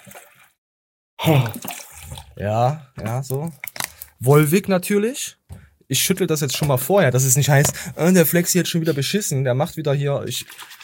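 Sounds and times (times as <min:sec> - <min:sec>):
water pouring into a container: 0:00.0 - 0:00.6, 0:01.2 - 0:04.3, 0:10.2 - 0:10.8
speech: 0:01.2 - 0:01.7, 0:02.4 - 0:03.6, 0:04.2 - 0:10.8.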